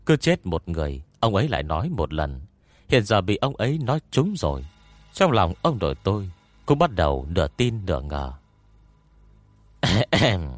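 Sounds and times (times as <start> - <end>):
speech: 0.1 - 8.4, 9.8 - 10.5
dry coughing: 9.8 - 10.5
throat clearing: 9.8 - 10.5.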